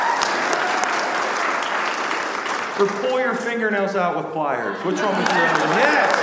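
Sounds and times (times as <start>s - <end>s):
audience clapping: 0.0s - 3.6s, 5.0s - 6.2s
speech: 2.8s - 6.2s
laughter: 4.6s - 6.2s.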